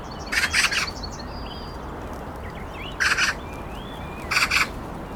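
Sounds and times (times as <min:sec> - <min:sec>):
Eurasian magpie Pica pica giving harsh rattling chatter: 0:00.3 - 0:00.9, 0:03.0 - 0:03.4, 0:04.3 - 0:04.7.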